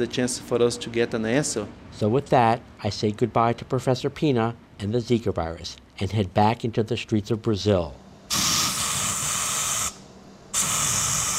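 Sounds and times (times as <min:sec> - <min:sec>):
speech: 0:00.0 - 0:08.0
aerosol can of bug spray hissing on the streets of Recife Brazil: 0:08.3 - 0:11.3.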